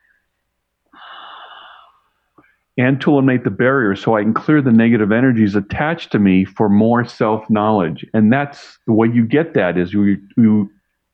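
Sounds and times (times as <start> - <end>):
deep breath inhaled: 0.9 - 2.6
speech: 2.8 - 11.1.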